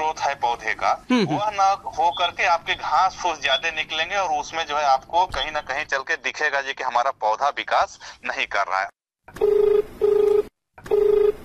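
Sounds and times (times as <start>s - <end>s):
speech: 0.2s - 9.8s
telephone ringing for an incoming call: 9.4s - 11.4s.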